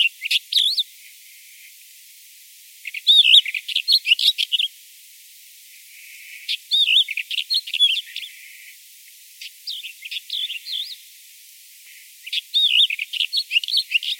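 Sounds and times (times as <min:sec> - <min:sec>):
bird calling in high wavy chirps and twittering: 0:02.8 - 0:04.7, 0:06.4 - 0:08.5, 0:09.4 - 0:11.0, 0:12.2 - 0:14.1.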